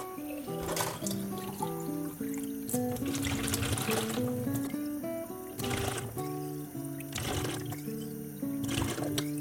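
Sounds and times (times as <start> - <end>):
water pouring into a watering can to dilute dandelion plant manure: 0.0 - 9.3.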